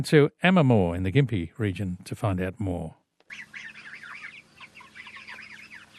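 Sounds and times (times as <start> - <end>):
speech: 0.0 - 3.8
low constant hum: 1.1 - 5.9
flock of 5-week-old pasture-raised chickens clucking and cheeping in a mobile shed: 3.2 - 5.9.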